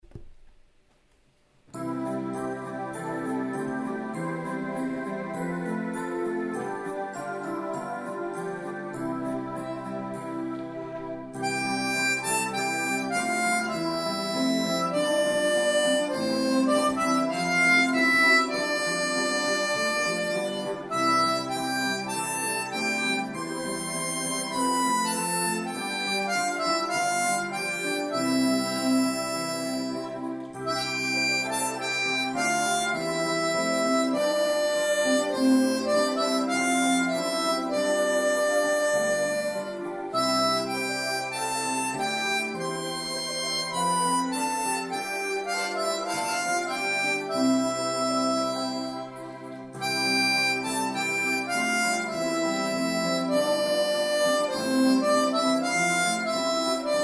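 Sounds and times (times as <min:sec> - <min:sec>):
harmonica playing a melody in C: 0:01.7 - 0:57.0.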